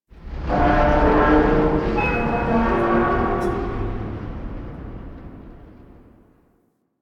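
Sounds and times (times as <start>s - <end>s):
ambient tank vocal: 0.5s - 4.4s.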